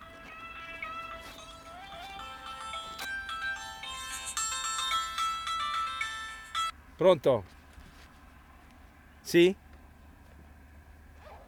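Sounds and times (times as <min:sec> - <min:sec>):
phone ringtone melody: 0:00.0 - 0:06.7
speech: 0:07.0 - 0:07.6, 0:09.3 - 0:09.6.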